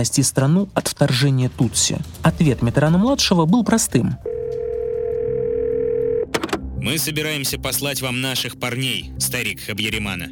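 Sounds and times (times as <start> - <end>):
speech: 0.0 - 4.3, 6.8 - 10.2
steady telephone line tone: 4.2 - 6.3.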